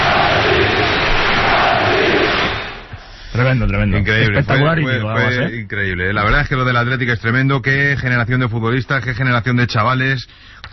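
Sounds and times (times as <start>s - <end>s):
stadium crowd of football fans roaring: 0.0s - 3.0s
speech: 3.5s - 10.7s.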